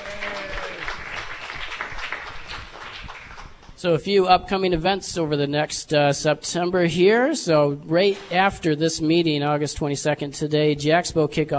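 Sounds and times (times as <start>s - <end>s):
crowd at a meeting applauding new members: 0.0s - 3.8s
speech: 3.8s - 11.5s.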